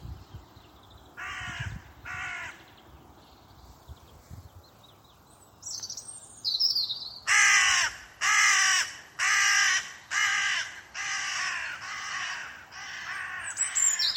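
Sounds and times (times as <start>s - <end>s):
bird giving harsh hoarse crow-like cawing calls: 1.2s - 2.7s, 7.2s - 14.1s.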